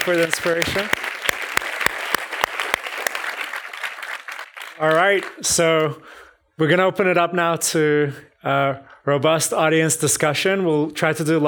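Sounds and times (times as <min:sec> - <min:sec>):
speech: 0:00.0 - 0:01.1, 0:04.8 - 0:11.4
room full of people clapping: 0:00.0 - 0:05.6
sharp loud claps: 0:00.0 - 0:05.9.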